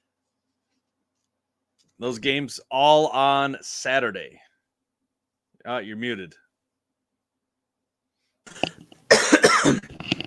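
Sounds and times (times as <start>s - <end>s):
speech: 2.0s - 4.5s, 5.6s - 6.4s
person coughing: 8.5s - 10.0s.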